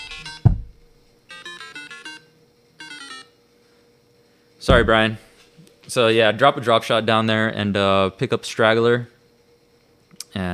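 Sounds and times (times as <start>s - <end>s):
phone ringtone for an incoming call: 0.0s - 0.6s, 1.3s - 3.4s
brief thump: 0.4s - 0.8s
speech: 4.7s - 5.3s, 5.9s - 9.1s, 10.3s - 10.5s.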